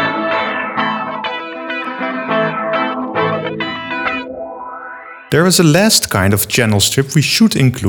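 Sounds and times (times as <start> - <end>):
electric guitar playing sustained chords with sweeping reverb: 0.0 - 5.3
speech: 5.3 - 7.8.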